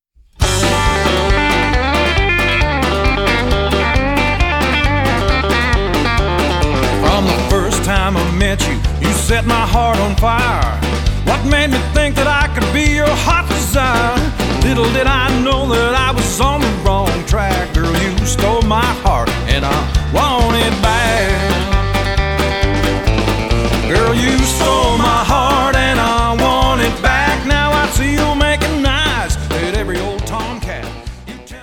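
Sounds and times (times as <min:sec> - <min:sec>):
chicken picking guitar: 0:00.4 - 0:31.6.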